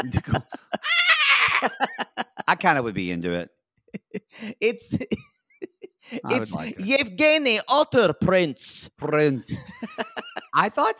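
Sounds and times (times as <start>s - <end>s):
speech: 0.0s - 0.6s, 2.6s - 3.6s, 4.4s - 5.3s, 6.1s - 10.9s
brief murmurs: 0.0s - 2.6s, 4.0s - 6.9s
laughter: 0.0s - 2.9s, 4.0s - 6.9s, 9.5s - 10.7s
short vocal bursts: 6.1s - 6.8s
drawn-out wavering goat bleat voiced by a person: 6.3s - 6.8s.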